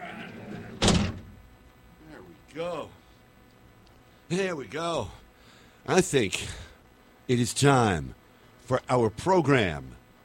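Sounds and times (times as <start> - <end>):
heavy door slamming shut: 0.4 - 1.4
speech: 2.6 - 3.0, 4.3 - 5.2, 5.8 - 6.7, 7.3 - 10.0.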